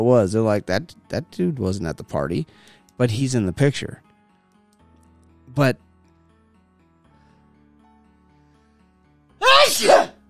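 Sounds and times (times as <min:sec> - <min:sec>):
speech: 0:00.0 - 0:04.1, 0:05.6 - 0:05.8, 0:09.4 - 0:10.1
loud sneeze: 0:09.4 - 0:10.2.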